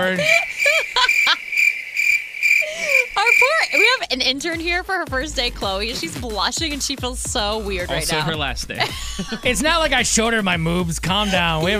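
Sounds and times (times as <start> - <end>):
speech: 0.0 - 1.2, 2.7 - 11.7
laughter: 0.0 - 1.5, 2.6 - 4.0, 7.9 - 11.7
crickets chirping: 0.1 - 4.0.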